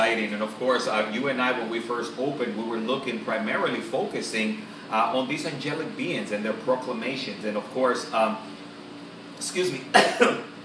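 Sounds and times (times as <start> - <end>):
speech: 0.1 - 8.6, 9.4 - 10.5
person coughing from excitement and a dry throat: 9.9 - 10.5.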